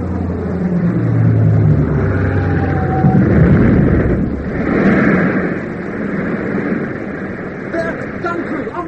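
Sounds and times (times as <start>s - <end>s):
heavy aircraft engine droning on a bombing run: 0.0s - 8.8s
booming explosions from an aircraft bombing run: 0.9s - 8.8s.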